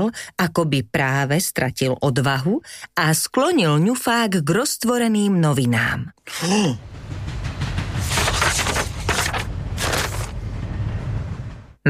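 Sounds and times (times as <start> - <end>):
speech: 0.0 - 6.9
train pulling away with heavy low rumble: 6.6 - 11.8.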